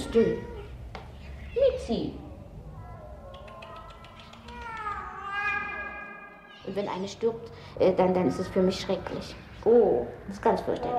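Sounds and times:
speech: 0.1 - 0.5, 1.6 - 2.2, 6.6 - 10.9
cat meowing: 2.7 - 6.8.

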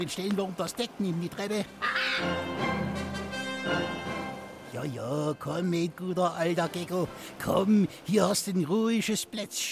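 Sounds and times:
speech: 0.0 - 9.6
parrot squawking in a cage: 1.8 - 2.5.

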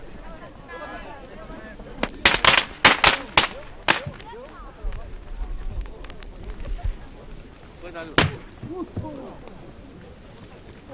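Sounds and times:
voices murmuring: 0.0 - 10.9
firecrackers exploding: 2.0 - 4.8, 8.0 - 9.1.

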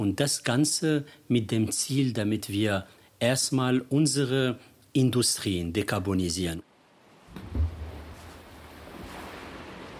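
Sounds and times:
speech: 0.0 - 6.7
Atlantic Ocean waves washing onto the shore of Morocco: 6.9 - 9.9.

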